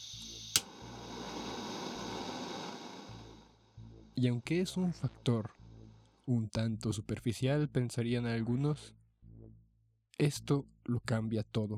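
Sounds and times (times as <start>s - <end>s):
butane torch igniting click: 0.0s - 3.0s
butane torch flame roaring hiss for dabbing cannabis concentrates: 0.0s - 3.7s
speech: 4.2s - 5.6s, 6.3s - 9.0s, 10.2s - 11.7s.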